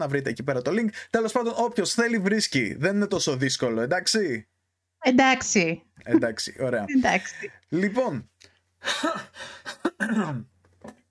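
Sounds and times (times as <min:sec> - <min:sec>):
speech: 0:00.0 - 0:10.5
person coughing: 0:09.8 - 0:10.4
person clearing throat: 0:09.9 - 0:10.5.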